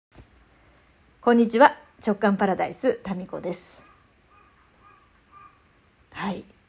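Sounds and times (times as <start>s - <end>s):
constant hiss: 0.2s - 6.6s
speech: 1.2s - 3.9s, 6.2s - 6.5s
crow cawing: 3.8s - 5.6s.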